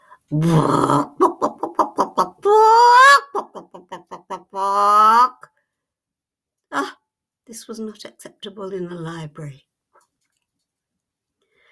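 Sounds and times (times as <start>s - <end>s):
speech: 0.3s - 1.2s, 7.6s - 9.7s
woman imitating a bird with clucks and squawks in a library queue: 1.1s - 5.5s.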